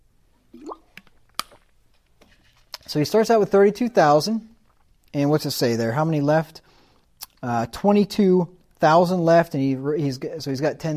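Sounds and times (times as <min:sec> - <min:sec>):
liquid gulp of water: 0:00.5 - 0:01.1
person sipping water: 0:00.5 - 0:01.1
speech: 0:02.9 - 0:04.5, 0:05.2 - 0:06.7, 0:07.4 - 0:10.9.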